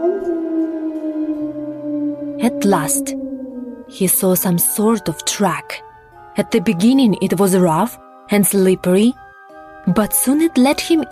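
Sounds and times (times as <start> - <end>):
wolves howling during bitter winter sleet and snow: 0.0 - 5.3
speech: 2.4 - 3.2, 3.9 - 9.2, 9.8 - 11.0.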